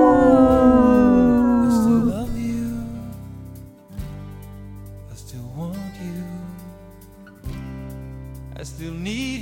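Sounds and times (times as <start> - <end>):
people howling like wolves: 0.0 - 3.1.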